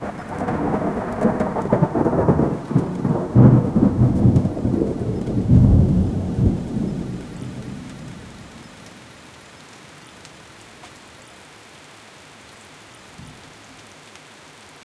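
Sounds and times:
thunder: 0.0 - 8.7
heavy rain: 0.0 - 14.8.

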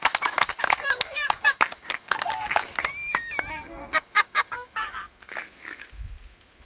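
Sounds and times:
cheerful laughter: 0.2 - 5.1.

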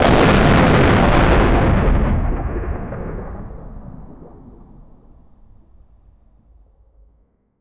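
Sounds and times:
demolition explosion: 0.0 - 5.8.

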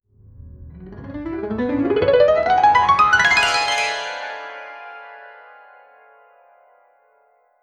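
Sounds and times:
soft piano: 0.5 - 5.2
motivational rising music: 0.8 - 4.2.

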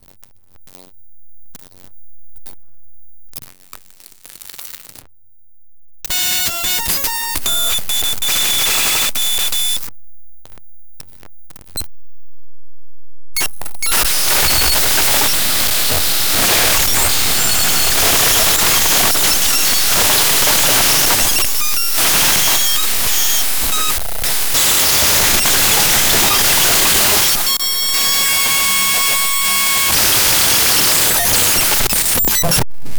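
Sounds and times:
broken wi-fi glitch noise: 6.1 - 9.9, 13.4 - 32.9.

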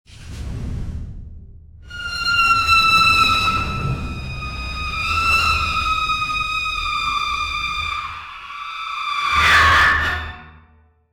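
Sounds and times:
orchestral screamer: 1.9 - 10.5.

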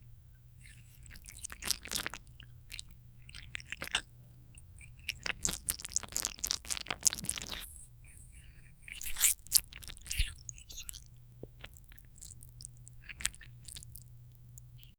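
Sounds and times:
squishy slippery sounds of a poisonous slime ball shot from a barrel: 0.7 - 4.1, 4.8 - 7.8, 8.9 - 14.0.

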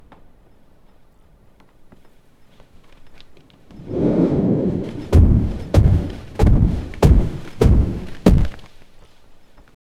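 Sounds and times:
footsteps running: 4.9 - 8.7.

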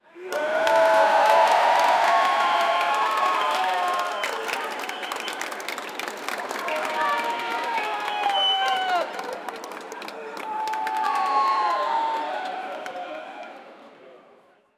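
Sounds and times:
crowd clapping: 0.3 - 13.6.

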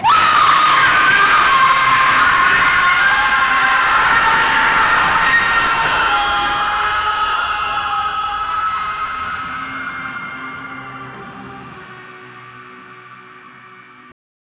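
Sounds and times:
futuristic death metal music: 0.0 - 14.1.

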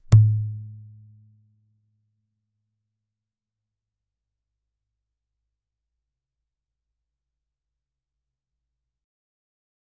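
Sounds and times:
single palm muted guitar hit: 0.0 - 0.7.

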